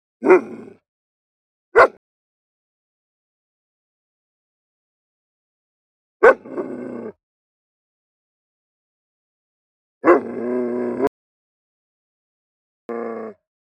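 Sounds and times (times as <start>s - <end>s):
German Shepherd dog barking aggressively: 0.2s - 0.7s, 1.8s - 2.0s, 6.2s - 6.5s, 10.0s - 10.3s
German Shepherd dog growling aggressively: 0.2s - 0.8s, 6.2s - 7.2s, 10.0s - 11.1s, 12.9s - 13.4s.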